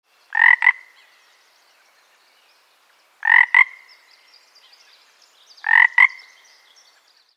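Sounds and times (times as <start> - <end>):
single frog croaking close: 0.3 - 1.3, 3.2 - 4.3, 5.6 - 6.7.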